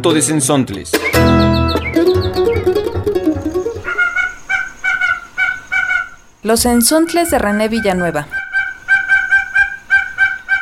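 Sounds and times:
speech: 0.0s - 2.3s, 6.4s - 8.4s
double-striped thick-knee calling at a house in Juchitán, Oaxaca, Mexico: 1.5s - 6.3s, 7.4s - 10.6s.

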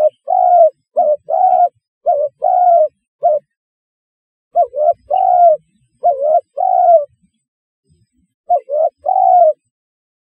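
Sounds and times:
spotted dove coo phrases: 0.0s - 3.5s, 4.6s - 7.2s, 8.5s - 9.6s.

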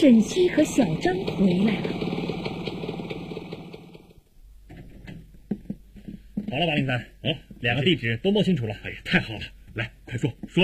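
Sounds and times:
speech: 0.0s - 2.1s, 6.5s - 10.6s
motorcycle engine arriving downstairs: 0.0s - 4.3s.

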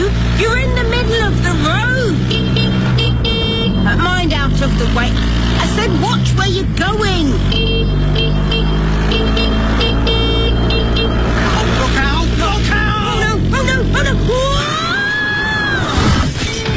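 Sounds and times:
engine and road traffic drone: 0.0s - 16.7s
horn-like tones: 0.5s - 6.5s, 7.1s - 13.9s.

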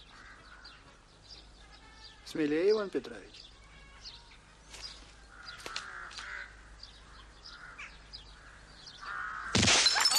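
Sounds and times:
faint bird caws: 0.0s - 1.0s, 3.5s - 9.6s
speech: 2.3s - 3.5s
pistol shot shattering a drinking glass: 9.5s - 10.1s.

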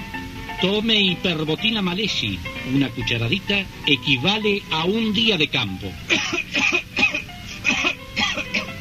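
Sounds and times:
speech: 0.6s - 6.4s
person coughing: 6.1s - 8.7s.

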